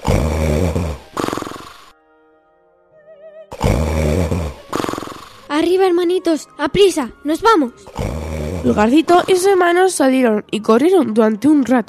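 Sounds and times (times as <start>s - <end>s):
loud exaggerated snoring of an ogre: 0.0s - 1.9s, 3.5s - 5.5s, 7.8s - 9.6s
speech: 5.6s - 11.8s.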